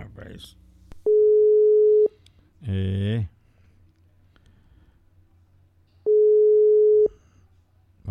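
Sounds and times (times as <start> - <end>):
telephone busy tone beeps on a dropped call: 1.1 - 2.1, 6.1 - 7.2.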